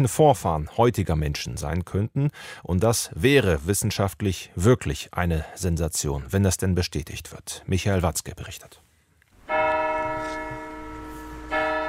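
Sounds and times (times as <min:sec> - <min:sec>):
speech: 0:00.0 - 0:08.8
church bells ringing: 0:09.4 - 0:11.8.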